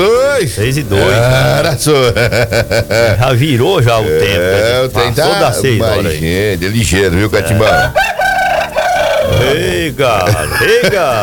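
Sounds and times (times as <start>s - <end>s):
speech: 0.0s - 8.1s, 9.3s - 11.2s
laughter: 0.9s - 6.3s, 7.1s - 11.2s
rooster crowing: 7.5s - 9.8s.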